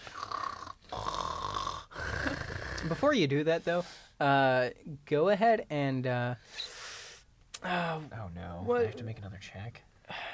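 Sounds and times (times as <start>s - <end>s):
voice imitating a dad's loud snoring: 0.0s - 3.0s
speech: 2.8s - 6.6s, 7.6s - 9.9s.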